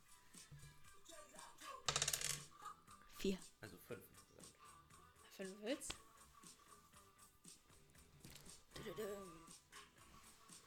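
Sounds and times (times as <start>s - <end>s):
dice rolling on a table: 1.9s - 2.5s
speech: 3.2s - 4.1s, 5.4s - 6.0s, 8.8s - 9.4s.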